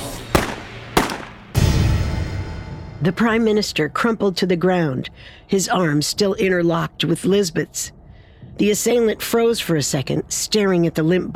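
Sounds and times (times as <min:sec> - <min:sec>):
large handgun gunshots fired on a street: 0:00.4 - 0:01.5
speech: 0:03.0 - 0:08.0, 0:08.6 - 0:11.3.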